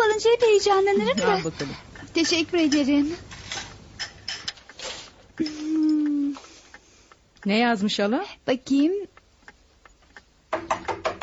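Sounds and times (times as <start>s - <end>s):
speech: 0.1s - 3.3s, 7.4s - 9.1s
building doorman knocking on a door: 10.5s - 11.2s.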